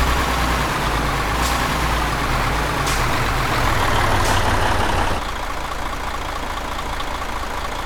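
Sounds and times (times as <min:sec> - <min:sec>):
Mercedes Actros truck slowing down: 0:00.0 - 0:07.8.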